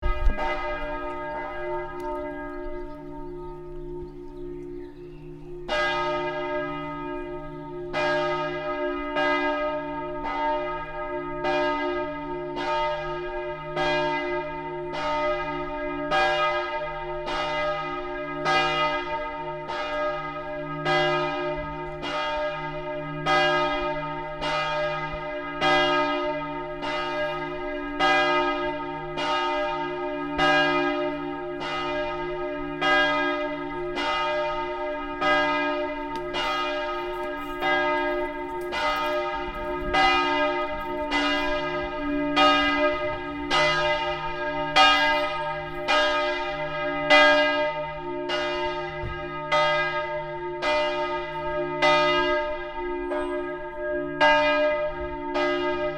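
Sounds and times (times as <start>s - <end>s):
bells: 0.0s - 55.9s.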